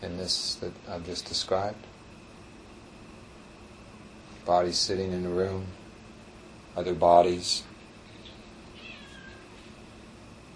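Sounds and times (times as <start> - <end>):
speech: 0.2 - 2.0, 4.5 - 5.8, 6.8 - 7.7
cat meowing faintly: 8.2 - 9.6.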